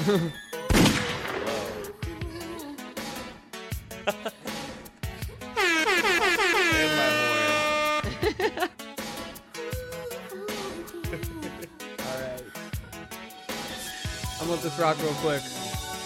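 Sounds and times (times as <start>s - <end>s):
laughter: 0.0s - 0.4s, 3.9s - 5.4s, 6.7s - 8.8s, 10.7s - 12.6s
speech: 0.0s - 0.4s, 14.6s - 15.6s
sharp punchy gunshot sound effects: 0.7s - 1.8s
loud blaring air horn: 5.6s - 8.2s.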